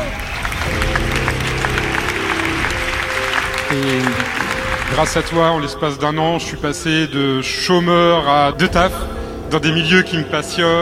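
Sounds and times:
crowd clapping: 0.0s - 6.0s
voices calling out and cheering: 0.0s - 6.2s
speech: 3.7s - 4.2s, 4.9s - 10.8s.

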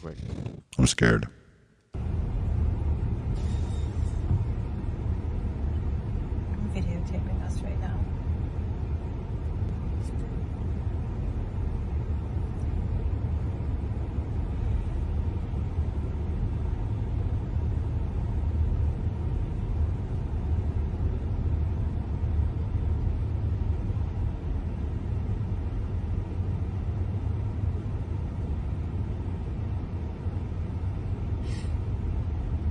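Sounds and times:
speech: 0.0s - 1.4s
heavy traffic crossing a bridge in San Francisco: 2.0s - 32.7s
high-pitched squeaks or clanks: 3.4s - 4.3s.

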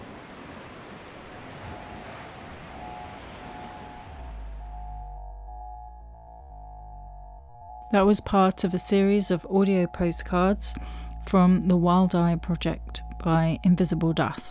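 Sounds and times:
sea waves washing onto the shore: 0.0s - 4.7s
faint steady hum: 0.8s - 14.4s
speech: 7.9s - 14.4s.

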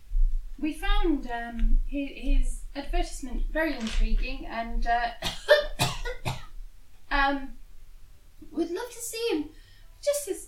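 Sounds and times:
speech: 0.6s - 5.4s, 7.2s - 7.6s, 8.5s - 10.4s
person coughing deliberately to catch a receptionist's attention: 5.2s - 6.5s.

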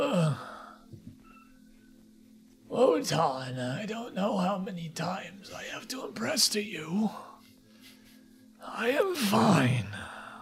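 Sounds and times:
old man groaning sigh: 0.0s - 0.7s, 8.9s - 10.3s
speech: 2.8s - 7.3s, 8.6s - 10.1s.

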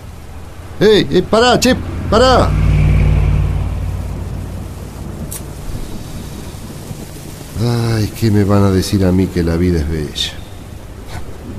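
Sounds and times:
steady heavy rain: 0.0s - 11.5s
person calling out: 0.8s - 2.6s
speech: 0.8s - 2.6s, 7.6s - 10.4s
deep low rumble: 1.8s - 8.3s.

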